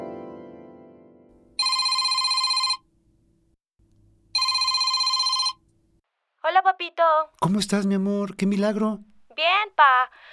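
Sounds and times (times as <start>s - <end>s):
telephone ringing with bright trilling bell tone: 1.5s - 2.9s, 4.3s - 5.6s
speech: 6.8s - 10.3s.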